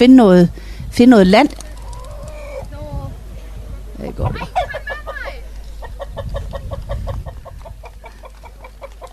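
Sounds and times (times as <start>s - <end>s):
speech: 0.0s - 1.6s, 4.0s - 4.7s
rooster clucking: 1.6s - 2.9s, 4.2s - 9.1s.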